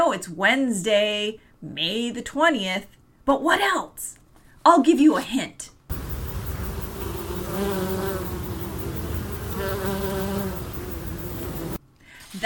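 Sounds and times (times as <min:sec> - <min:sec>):
speech: 0:00.1 - 0:06.0, 0:07.6 - 0:08.1
bee buzzing: 0:05.9 - 0:11.8.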